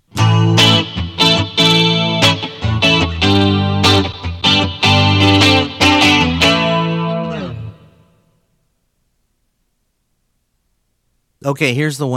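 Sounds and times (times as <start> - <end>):
clean electric guitar through an effects unit with chorus-like effect: 0.1 - 8.3
speech: 11.5 - 12.1.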